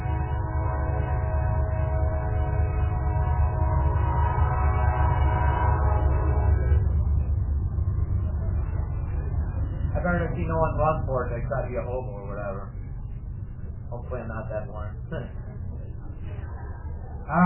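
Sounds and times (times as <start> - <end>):
train long steady horn blaring: 0.0 - 8.0
train rumbling past across the street: 0.0 - 17.4
speech: 10.4 - 12.8, 14.1 - 15.4, 17.3 - 17.4.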